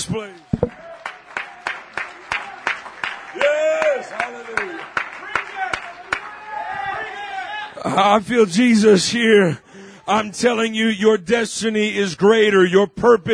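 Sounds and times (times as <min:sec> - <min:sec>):
congregation clapping hands in a rhythmic beat: 0:00.0 - 0:07.2
speech: 0:00.1 - 0:00.8, 0:03.4 - 0:05.0, 0:07.8 - 0:13.3.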